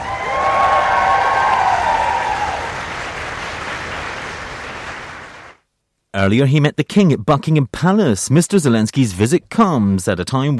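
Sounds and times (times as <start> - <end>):
Foreign Office staff cheering an arriving visitor: 0.0 - 5.4
Foreign Office staff clapping: 0.0 - 5.6
speech: 6.2 - 10.5.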